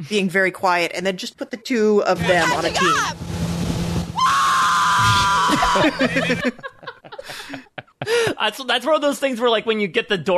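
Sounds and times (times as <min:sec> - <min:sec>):
speech: 0:00.0 - 0:03.4, 0:05.8 - 0:10.3
woman's loud high-pitched scream of ecstasy: 0:02.4 - 0:03.1, 0:04.2 - 0:06.2
laughter: 0:05.3 - 0:08.4.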